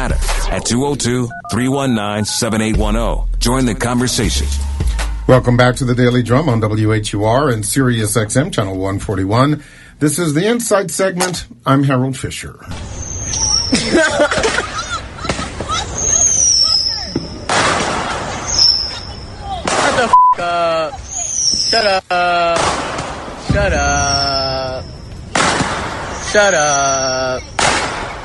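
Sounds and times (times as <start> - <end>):
speech: 0.1 - 14.8, 21.7 - 22.9, 23.5 - 24.9, 26.3 - 27.5
firecrackers and bottle rockets going off inside a cab: 12.7 - 20.2, 22.5 - 28.2
laughter: 13.7 - 16.2, 19.8 - 22.7.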